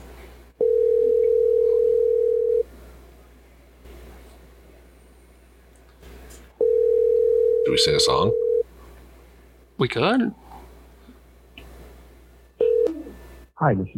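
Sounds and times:
ringback tone of an outgoing phone call: 0.6s - 2.7s, 6.6s - 8.6s, 12.6s - 13.2s
speech: 7.7s - 8.4s, 9.8s - 10.4s, 13.6s - 13.9s.

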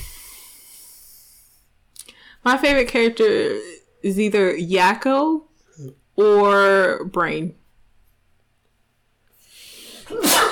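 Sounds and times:
speech: 2.4s - 7.6s
person sneezing: 9.9s - 10.5s.

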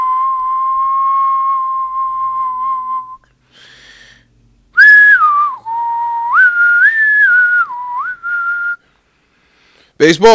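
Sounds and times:
person whistling a tune: 0.0s - 3.3s, 4.8s - 8.9s
speech: 10.0s - 10.3s.

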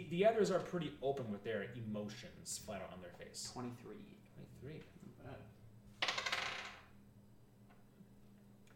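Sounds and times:
speech: 0.0s - 5.6s
dice rolled across a table in a tabletop role-playing game: 5.9s - 7.0s.

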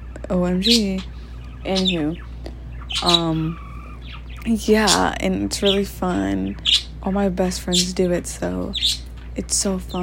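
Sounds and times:
faint low hum: 0.0s - 10.0s
speech: 0.3s - 2.3s, 2.9s - 3.6s, 4.4s - 10.0s
bird squawking loudly: 0.7s - 4.3s.

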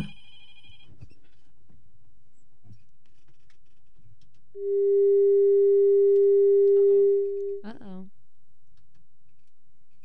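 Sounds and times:
telephone steady electronic tone: 4.6s - 7.6s.

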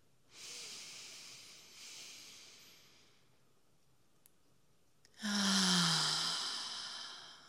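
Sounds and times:
person breathing in and out in a guided breathing exercise: 0.3s - 3.3s, 5.2s - 7.4s.

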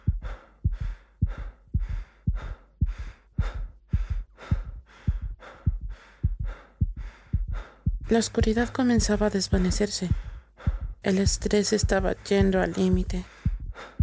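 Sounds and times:
laboured breathing: 0.0s - 8.1s, 9.6s - 11.0s, 13.2s - 14.0s
heart pounding hard under extreme stress: 0.0s - 14.0s
speech: 8.1s - 10.3s, 11.0s - 13.4s.

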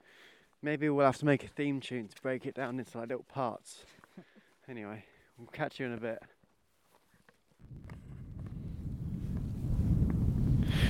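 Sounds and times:
speech: 0.6s - 6.4s
low rumbling wind buffeting the microphone outdoors: 7.6s - 10.8s.

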